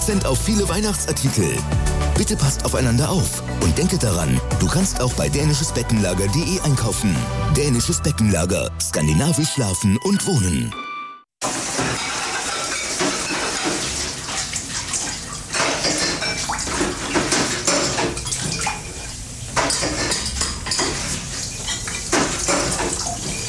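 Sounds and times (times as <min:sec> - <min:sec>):
speech: 0:00.0 - 0:10.9
running water: 0:11.4 - 0:23.4
pots, pans and cutlery clattering and clinking while washed by hand: 0:11.5 - 0:23.4.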